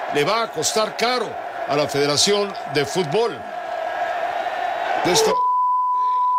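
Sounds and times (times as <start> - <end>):
stadium crowd roaring and chanting: 0.0 - 5.3
speech: 0.1 - 3.5, 5.0 - 5.4
steady high-pitched censor beep: 5.4 - 6.3.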